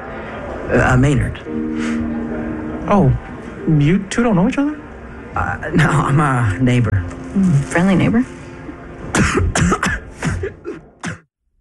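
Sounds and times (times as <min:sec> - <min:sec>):
speech: 0:00.7 - 0:02.2, 0:02.9 - 0:04.8, 0:05.4 - 0:08.4, 0:09.2 - 0:09.8
person coughing in a rapid fit of harsh raspy bursts: 0:09.1 - 0:11.3.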